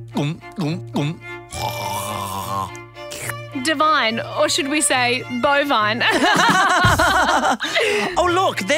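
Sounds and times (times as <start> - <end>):
speech: 0.1 - 1.7, 3.6 - 8.7
person gulping milk: 0.2 - 3.4
laughter: 6.0 - 8.4.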